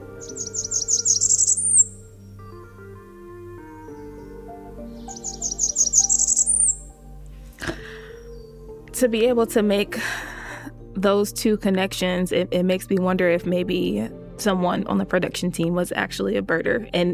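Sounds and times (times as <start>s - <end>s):
high thin bird call with upward-sliding last note: 0.0s - 2.1s, 5.0s - 6.9s
speech: 9.0s - 10.2s, 11.0s - 17.1s.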